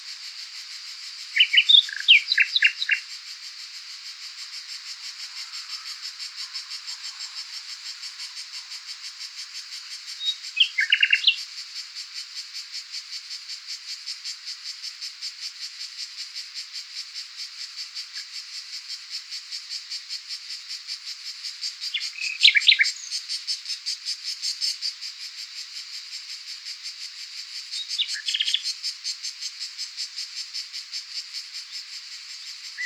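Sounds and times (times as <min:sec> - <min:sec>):
background noise from cicadas in Southern Tuscany: 0:00.0 - 0:32.8
Luscinia megarhynchos nightingale call with hesitant syllables in Southern Tuscany: 0:01.0 - 0:03.1, 0:04.9 - 0:11.5, 0:21.6 - 0:23.8, 0:27.6 - 0:30.2, 0:31.0 - 0:32.8.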